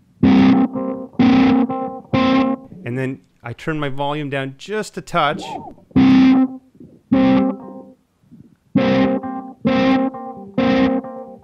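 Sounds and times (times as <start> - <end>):
electric guitar chords through auto filter and fuzz pedals: 0.2 - 2.8, 5.4 - 8.0, 8.8 - 11.4
speech: 2.8 - 6.6.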